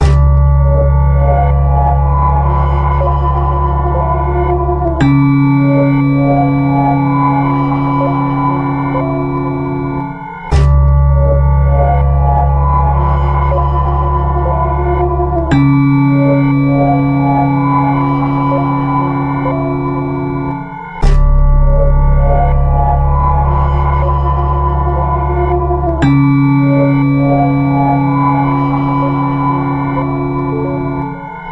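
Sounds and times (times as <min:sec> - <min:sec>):
bass: 0:00.0 - 0:31.5
bells: 0:00.0 - 0:31.5.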